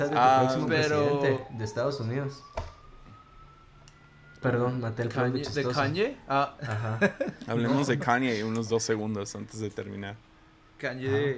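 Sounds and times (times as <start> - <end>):
speech: 0.0 - 2.7, 4.4 - 11.3
faint ambulance siren passing outside: 0.0 - 6.7
laughter: 6.6 - 8.5.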